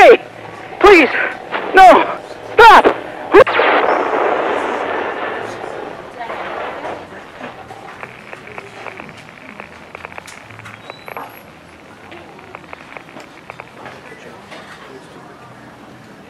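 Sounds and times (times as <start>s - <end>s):
speech: 0.9s - 3.6s
weapon firing on people: 1.5s - 7.4s
faint ticks: 7.8s - 14.0s.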